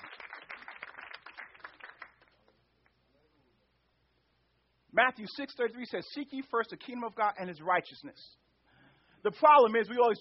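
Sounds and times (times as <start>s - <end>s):
audience hand clapping: 0.0s - 2.6s
speech: 4.9s - 8.4s, 9.2s - 10.1s.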